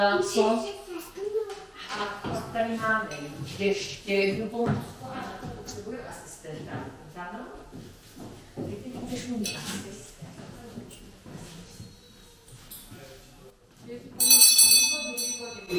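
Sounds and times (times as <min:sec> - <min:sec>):
speech: 0:00.0 - 0:00.8, 0:01.9 - 0:10.0
bright loud hand bell jangling: 0:14.2 - 0:15.7.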